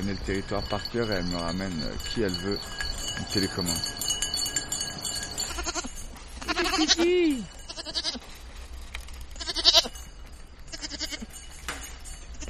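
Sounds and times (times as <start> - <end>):
soft voices: 0.0 - 4.0, 6.4 - 7.7
speech: 0.0 - 4.1, 6.8 - 8.3
faint bell clinking: 0.0 - 12.4
several goats bleating in a herd: 5.1 - 8.3, 9.4 - 10.0, 10.7 - 11.4.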